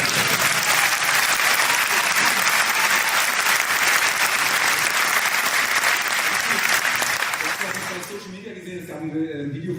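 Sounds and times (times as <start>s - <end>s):
crowd applause: 0.0s - 8.3s.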